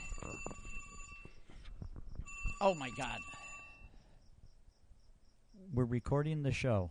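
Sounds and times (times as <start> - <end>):
phone ringing with an incoming call: 0.0 - 4.2
speech: 2.6 - 3.4, 5.6 - 6.8.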